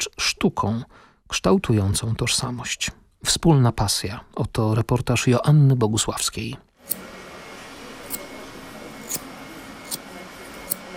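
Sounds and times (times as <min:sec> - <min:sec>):
speech: 0:00.4 - 0:07.1
Damascus steel hairdressing scissors snipping: 0:08.1 - 0:08.3, 0:09.0 - 0:09.3, 0:10.6 - 0:10.8.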